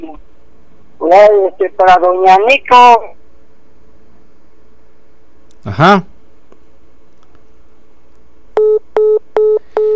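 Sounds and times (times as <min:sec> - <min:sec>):
speech: 0:00.0 - 0:00.3, 0:01.1 - 0:03.2, 0:05.6 - 0:06.1
dropped phone call tone electronic beeps: 0:08.6 - 0:09.9.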